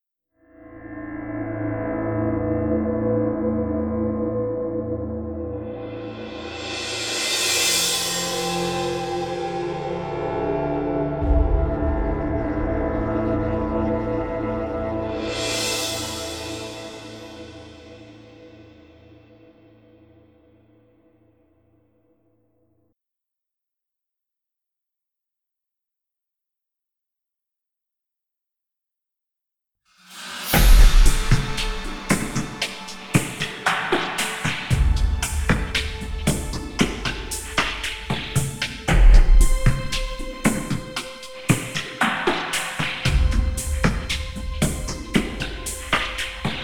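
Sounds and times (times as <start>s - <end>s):
synth pad: 0.7s - 19.6s, 30.1s - 46.6s
beat: 30.2s - 46.6s.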